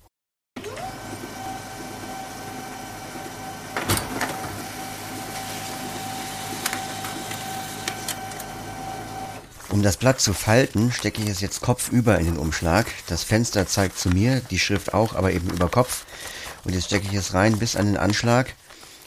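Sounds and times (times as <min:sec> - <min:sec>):
printer clunk: 0:00.6 - 0:09.5
printer whirring while printing a letter with an address for a window envelope: 0:00.6 - 0:18.5
printer clicks: 0:03.2 - 0:09.5
speech: 0:09.8 - 0:18.6.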